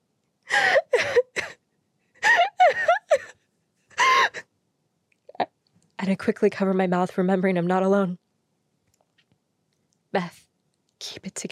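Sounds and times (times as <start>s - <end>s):
person sobbing while hiding under a dusty desk: 0.5s - 1.6s, 2.2s - 3.4s, 4.0s - 4.4s
speech: 6.1s - 8.2s, 10.1s - 10.4s, 11.1s - 11.5s.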